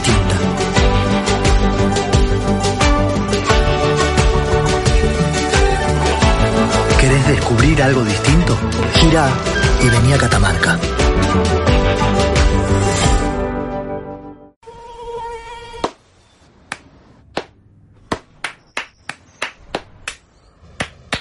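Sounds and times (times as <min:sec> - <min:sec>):
music: 0:00.0 - 0:14.6
speech: 0:07.8 - 0:12.6
thin whiny mosquito buzz: 0:14.6 - 0:15.9
sharp irregular claps or snaps: 0:16.7 - 0:21.1.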